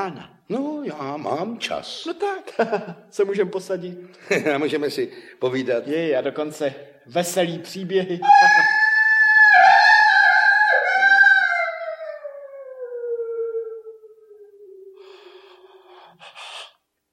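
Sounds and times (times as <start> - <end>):
speech: 0.0 - 8.8
wolf howling: 8.2 - 15.1.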